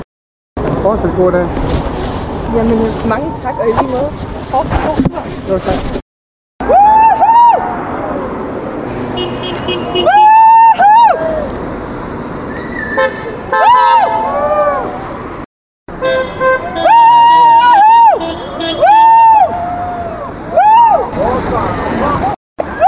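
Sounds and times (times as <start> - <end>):
street traffic: 0.6 - 6.0, 6.6 - 22.8
speech: 0.9 - 1.7, 2.5 - 6.0
car horn honking: 8.9 - 11.0, 13.0 - 14.2, 15.9 - 19.2.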